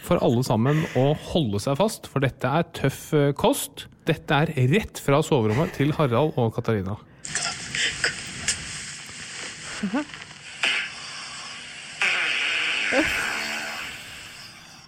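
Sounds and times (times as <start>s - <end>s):
speech: 0.1s - 7.1s, 9.8s - 10.2s, 12.9s - 13.2s
hiss: 7.2s - 14.8s
fart: 9.6s - 14.8s.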